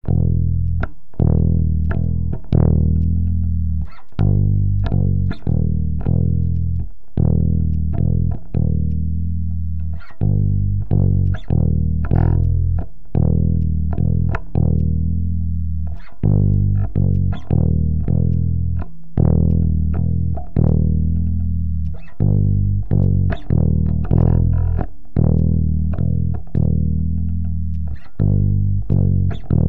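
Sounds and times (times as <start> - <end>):
metal bass: 0.0 - 29.6.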